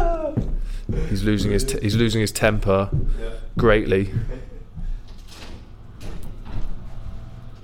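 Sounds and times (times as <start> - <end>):
speech: 1.0 - 4.5
door shaken and rattled by an angry person, sliding open: 5.0 - 7.6.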